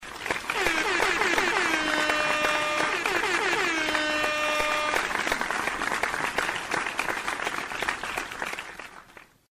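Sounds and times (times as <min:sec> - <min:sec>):
horn clap: 0:00.0 - 0:09.3.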